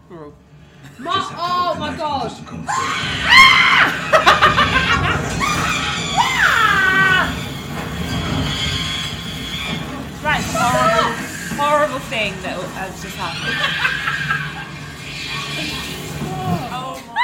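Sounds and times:
noisy chaotic background: 0.0 - 17.2
speech: 1.0 - 4.0, 12.1 - 14.0
frantic overlapping screams: 2.5 - 17.2
rising and falling wail: 2.5 - 17.2
loud high-pitched shrieks of horror: 2.7 - 7.4, 10.6 - 11.5, 13.3 - 14.7
laughter: 3.3 - 6.5, 12.3 - 15.0.

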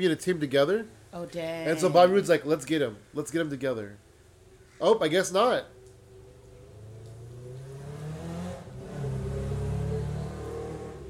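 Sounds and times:
speech: 0.0 - 4.0, 4.8 - 5.8
motorcycle engine revving: 6.0 - 11.0.

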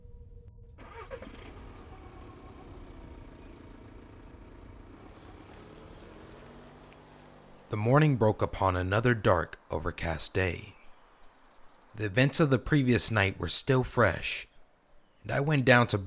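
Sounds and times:
car engine cranking and catching: 0.6 - 9.7
car engine rumbling idle: 0.8 - 11.9
speech: 7.7 - 10.8, 12.0 - 14.5, 15.2 - 16.0.

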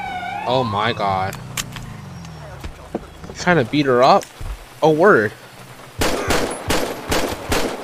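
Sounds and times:
speech: 0.5 - 1.5, 3.4 - 5.4
gunshots in a police role-play video game: 6.0 - 7.8.

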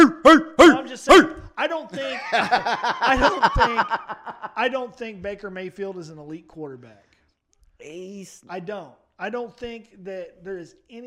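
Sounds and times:
several dogs barking: 0.0 - 1.5
speech: 0.3 - 7.2, 7.8 - 11.0
laughter: 1.9 - 4.8.

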